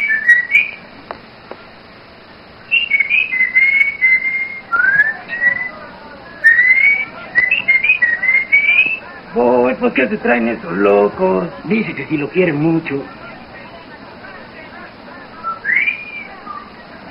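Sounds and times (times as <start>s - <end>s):
man whistling melodic phrases in a carpenter's workshop: 0.0s - 0.8s, 2.7s - 5.8s, 6.4s - 9.0s, 15.4s - 16.6s
speech: 9.4s - 13.2s.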